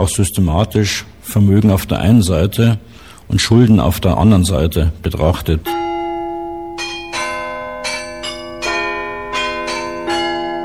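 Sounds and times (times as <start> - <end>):
speech: 0.0 - 5.9
town hall carillon bells ringing a melodic sequence: 5.7 - 10.6.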